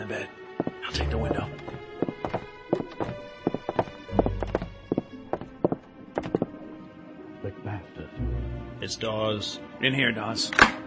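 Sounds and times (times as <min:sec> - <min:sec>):
speech: 0:00.1 - 0:02.4, 0:08.9 - 0:10.7
slow footsteps on a wooden balcony: 0:00.6 - 0:06.6.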